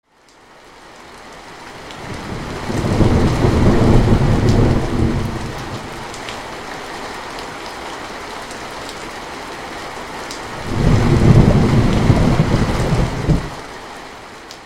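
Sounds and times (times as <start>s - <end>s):
rain: 0.0s - 14.6s
thunder: 2.1s - 6.2s, 10.6s - 13.6s.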